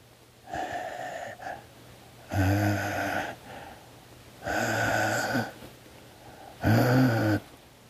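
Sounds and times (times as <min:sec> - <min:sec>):
voice imitating slow heavy wheezy breathing behind a door: 0:00.5 - 0:03.8, 0:04.4 - 0:05.6, 0:06.2 - 0:07.5.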